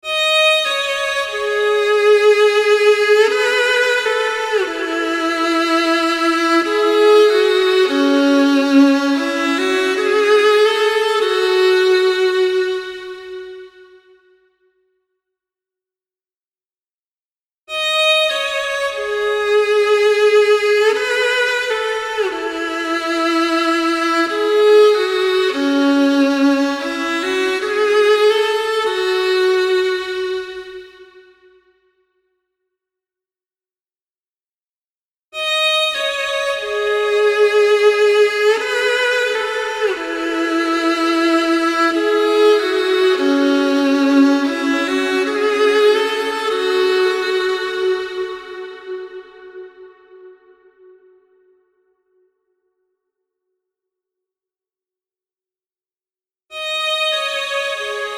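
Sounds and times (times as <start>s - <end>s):
solo violin wet variations: 0.0s - 14.4s, 17.7s - 31.8s, 35.4s - 51.6s, 56.5s - 58.1s.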